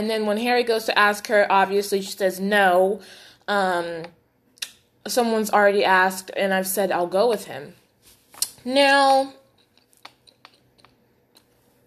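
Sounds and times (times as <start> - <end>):
speech: 0.0 - 4.2, 5.0 - 7.8, 8.6 - 9.4
gum chewing: 9.6 - 11.5
soft wet mouth smacks: 9.8 - 11.0.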